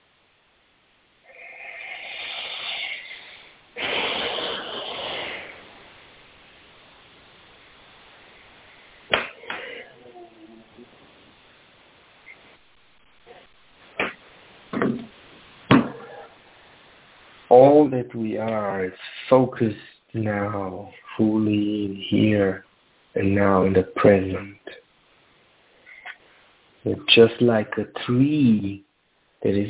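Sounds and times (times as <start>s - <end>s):
deep slow conscious breathing: 1.6s - 5.8s
speech: 17.5s - 24.6s, 26.8s - 28.8s, 29.4s - 29.6s.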